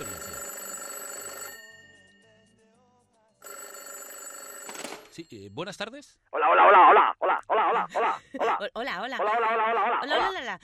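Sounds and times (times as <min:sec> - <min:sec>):
telephone ringing on an outgoing call: 0:00.0 - 0:02.1, 0:03.4 - 0:05.2
speech: 0:05.2 - 0:10.6
laughter: 0:06.5 - 0:10.4.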